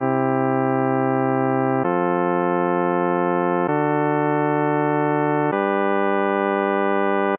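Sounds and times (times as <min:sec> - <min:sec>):
chords modulating from C major to G major: 0:00.0 - 0:07.3.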